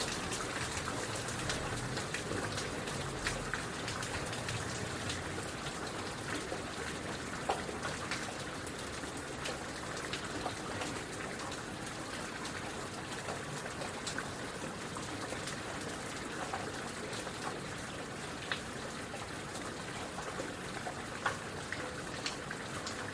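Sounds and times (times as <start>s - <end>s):
faint water trickle: 0.0s - 23.1s
steady dense rain: 0.0s - 23.1s.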